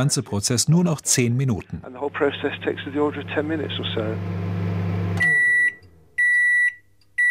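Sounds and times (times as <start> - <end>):
speech: 0.0 - 4.5
kitchen microwave oven humming while drying material: 1.9 - 6.4
kitchen microwave oven electronic beeps: 2.1 - 7.2.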